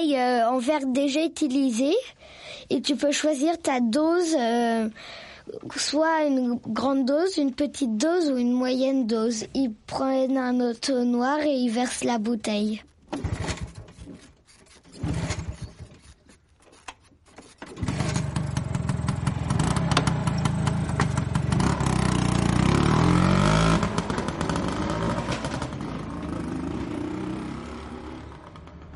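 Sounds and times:
speech: 0.0s - 13.4s
small two-stroke scooter engine sputtering and revving: 13.1s - 14.1s, 14.9s - 16.1s, 17.6s - 28.9s.

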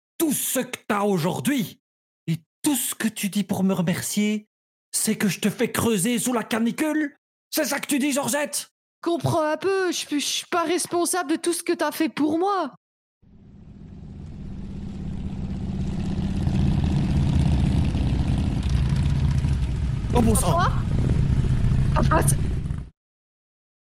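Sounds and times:
speech: 0.2s - 12.8s, 20.2s - 21.1s, 22.0s - 22.5s
airplanes flying overhead: 13.3s - 22.8s
person exclaiming excitedly: 20.2s - 20.9s.

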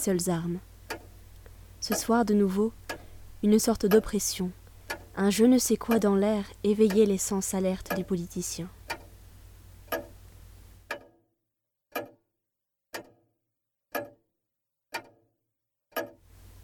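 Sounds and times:
speech: 0.0s - 0.7s, 1.8s - 2.8s, 3.4s - 4.6s, 5.2s - 8.8s
clock ticking: 0.0s - 9.2s, 9.8s - 10.2s, 10.8s - 11.2s, 11.9s - 12.2s, 12.9s - 13.3s, 13.9s - 14.2s, 14.9s - 15.2s, 15.9s - 16.3s.

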